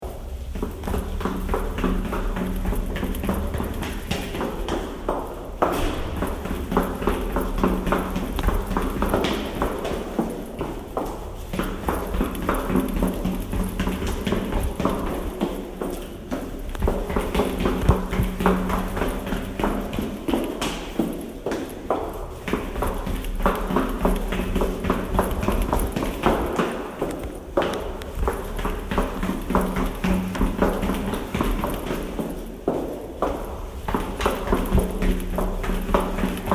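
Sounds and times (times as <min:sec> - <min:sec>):
person running downstairs: 0:00.0 - 0:36.5.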